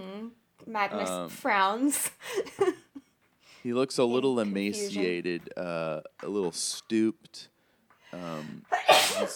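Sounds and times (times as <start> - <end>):
speech: 0.7 - 2.8, 3.6 - 7.5, 8.1 - 9.3
person sneezing: 8.7 - 9.3.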